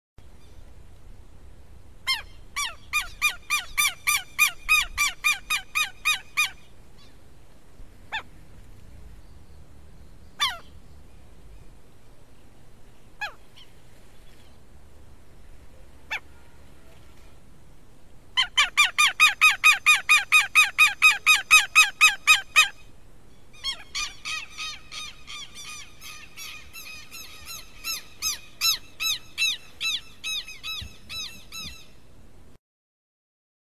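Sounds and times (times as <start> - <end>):
southern lapwing calling: 2.0 - 7.2, 8.1 - 8.4, 9.2 - 11.3, 13.0 - 14.6, 16.0 - 17.1, 18.4 - 32.1.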